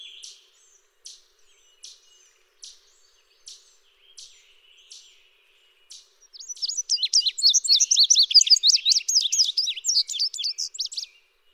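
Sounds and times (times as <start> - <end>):
Indigo bunting song: 0.0 - 11.5
Indigo bunting chip calls: 6.4 - 11.1.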